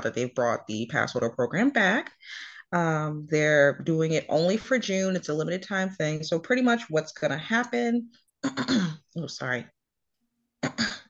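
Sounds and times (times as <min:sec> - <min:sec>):
speech: 0:00.0 - 0:09.8, 0:10.6 - 0:11.0
person clearing a dry throat: 0:08.4 - 0:09.0, 0:10.6 - 0:11.0.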